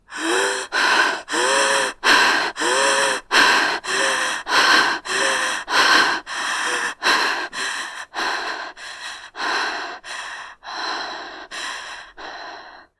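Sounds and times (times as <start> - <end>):
women hyperpnea: 0.0 - 12.9.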